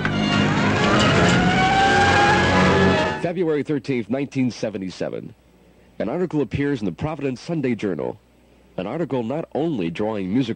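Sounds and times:
engines of cars closing in roaring and revving: 0:00.0 - 0:03.2
speech: 0:03.4 - 0:05.4, 0:06.0 - 0:08.2, 0:08.8 - 0:10.5.

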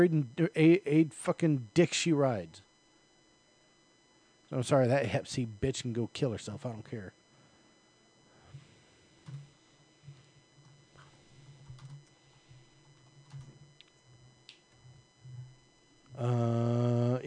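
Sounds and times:
speech: 0:00.0 - 0:02.6, 0:04.5 - 0:07.2, 0:16.2 - 0:17.2
low steady hum: 0:00.0 - 0:17.2
typing on a computer keyboard: 0:11.6 - 0:12.2, 0:12.9 - 0:13.6.

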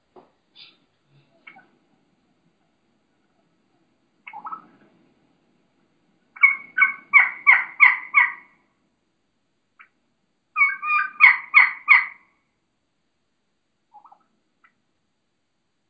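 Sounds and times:
wild turkey hen calling kee-kee run into yelps: 0:00.6 - 0:01.8, 0:04.2 - 0:04.8, 0:06.3 - 0:08.7, 0:09.7 - 0:12.4, 0:13.9 - 0:14.8.

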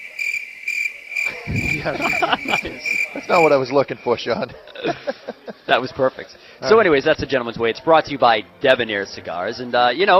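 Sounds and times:
crickets chirping: 0:00.0 - 0:03.6
laughter: 0:01.2 - 0:06.3
speech: 0:01.5 - 0:10.1.

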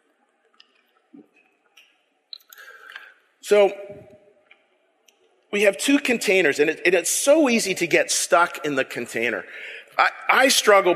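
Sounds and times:
person drinking water: 0:02.4 - 0:03.3
speech: 0:03.5 - 0:04.1, 0:05.5 - 0:10.9.

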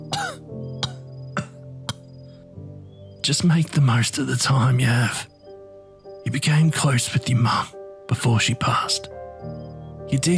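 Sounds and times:
person coughing: 0:00.1 - 0:02.0
speech: 0:03.2 - 0:05.3, 0:06.3 - 0:10.3.

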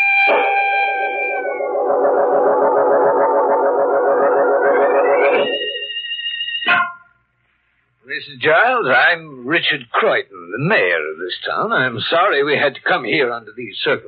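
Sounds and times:
police sirens wailing: 0:00.0 - 0:06.0
speech: 0:08.2 - 0:14.0.

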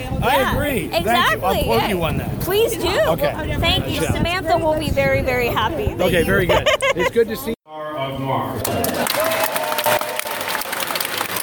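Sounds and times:
speech: 0:00.1 - 0:07.6
laughter: 0:06.4 - 0:07.3
crowd applause: 0:08.6 - 0:11.4.

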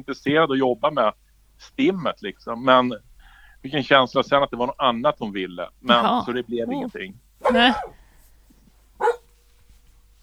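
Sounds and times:
speech: 0:00.0 - 0:08.0
dog barking: 0:06.7 - 0:08.1, 0:09.0 - 0:09.4.

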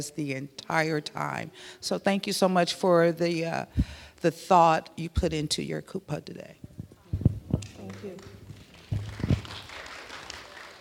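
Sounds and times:
speech: 0:00.0 - 0:06.7
audience clapping in a mosque: 0:07.5 - 0:10.7.

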